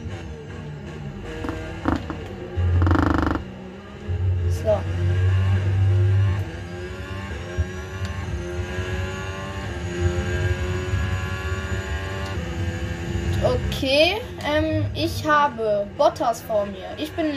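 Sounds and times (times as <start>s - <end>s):
racing car engine in a Formula 1 video game: 0.0s - 17.3s
speech: 15.0s - 17.3s.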